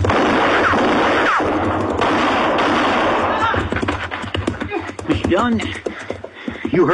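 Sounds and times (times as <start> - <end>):
gunshots from a young rider's gun aimed at a man: 0.0 - 4.5
speech: 5.3 - 5.9, 6.7 - 6.9.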